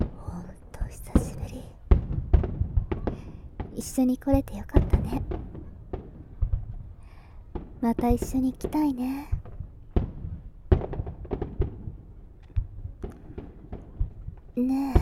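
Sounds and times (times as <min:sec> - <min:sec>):
fireworks crackling and popping: 0:00.0 - 0:15.0
person speaking softly, almost whispering: 0:00.1 - 0:01.8
speech: 0:03.8 - 0:05.4, 0:07.8 - 0:09.4, 0:14.6 - 0:15.0.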